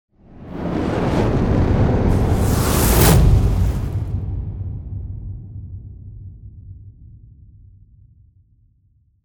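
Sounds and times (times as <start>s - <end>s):
fire: 0.2s - 5.2s.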